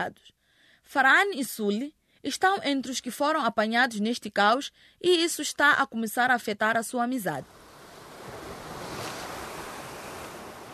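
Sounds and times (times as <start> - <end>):
speech: 0.0 - 7.6
rough sea waves roaring: 7.4 - 10.7
wind: 7.4 - 10.7.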